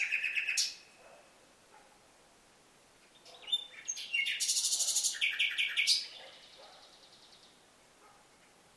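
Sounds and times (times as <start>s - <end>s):
common nightingale Luscinia megarhynchos singing: 0.0s - 1.4s, 3.0s - 7.7s.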